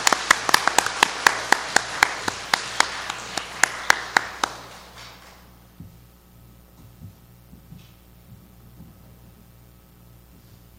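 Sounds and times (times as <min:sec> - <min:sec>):
church audience applause welcoming a speaker in Los Angeles: 0:00.0 - 0:05.5.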